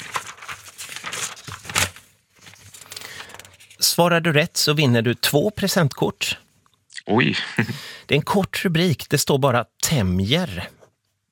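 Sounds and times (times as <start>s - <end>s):
paper pages being flipped: 0.0s - 3.8s
speech: 4.0s - 6.4s, 7.1s - 10.8s.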